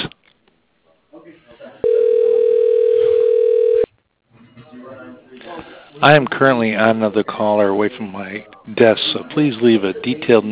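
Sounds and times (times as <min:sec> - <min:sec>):
sounds: 0:00.0 - 0:03.4, 0:04.2 - 0:10.5
telephone dial tone while dialing an office extension: 0:01.8 - 0:03.9
speech: 0:06.0 - 0:10.5.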